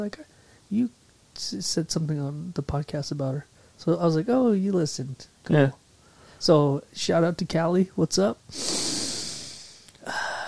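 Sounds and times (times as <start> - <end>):
speech: 0.0 - 5.8, 6.4 - 8.9
odd nasal sniff and snort: 8.5 - 9.9.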